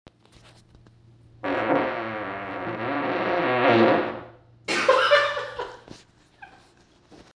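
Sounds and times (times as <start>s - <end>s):
long fart: 1.4s - 4.5s
laughter: 4.7s - 5.9s.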